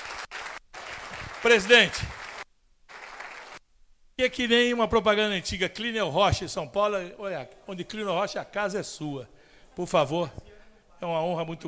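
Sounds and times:
audience applause: 0.0s - 3.6s
speech: 1.4s - 2.2s, 4.2s - 11.6s.

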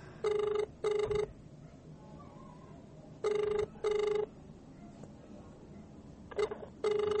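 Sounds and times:
faint noise: 0.0s - 7.1s
unanswered phone call ringback tone: 0.2s - 1.3s, 3.2s - 4.3s, 6.3s - 7.1s.

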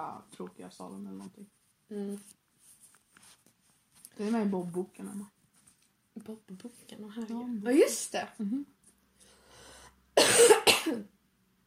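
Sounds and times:
speech: 0.1s - 2.4s, 4.2s - 5.4s, 6.2s - 8.8s, 10.3s - 11.2s
person coughing into the microphone: 10.2s - 11.1s.

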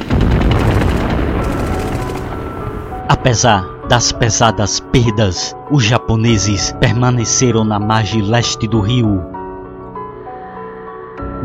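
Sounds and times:
machine-gun fire in continuous bursts: 0.0s - 2.9s
deep booming artillery blasts: 0.0s - 3.1s
speech: 3.2s - 9.3s.

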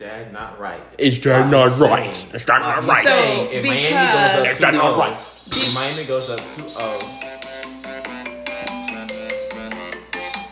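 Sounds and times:
speech: 0.0s - 7.3s
steady musical backing in a TV commercial: 2.6s - 10.4s
bright bells chiming over a TV commercial: 4.5s - 10.4s.

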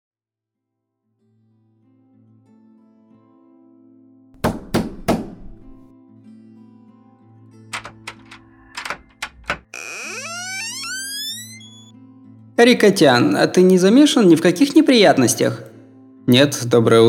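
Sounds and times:
hard pounding knocks on a door: 4.4s - 5.9s
speech: 12.6s - 15.7s, 16.3s - 17.0s.

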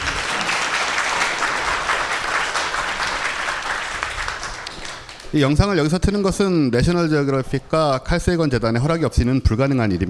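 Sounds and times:
audience applause: 0.0s - 5.5s
speech: 5.3s - 10.0s.

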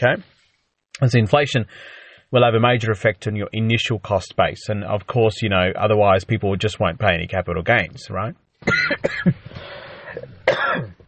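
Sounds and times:
speech: 0.0s - 0.3s, 1.0s - 10.9s
coughs from a tickly throat: 8.6s - 11.0s.

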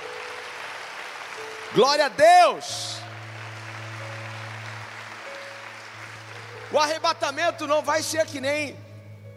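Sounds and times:
large audience applauding: 0.0s - 8.4s
speech: 1.4s - 3.0s, 6.7s - 8.8s.

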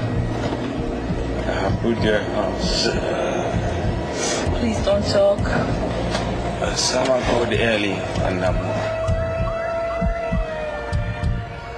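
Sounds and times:
low rhythmic thumps: 0.0s - 11.7s
speech: 1.7s - 3.6s, 4.6s - 5.9s, 6.6s - 9.0s
ambulance siren wailing with rising and falling tones: 7.4s - 11.7s.

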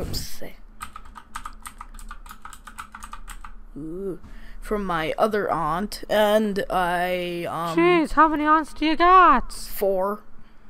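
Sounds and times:
keys clacking on a gaming keyboard: 0.8s - 3.5s
speech: 3.8s - 10.3s.

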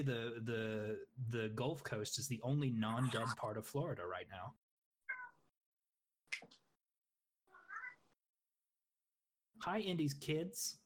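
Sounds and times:
speech: 0.0s - 4.6s, 6.4s - 6.6s, 9.6s - 10.8s
house cat meowing: 5.1s - 5.4s, 7.6s - 8.1s.

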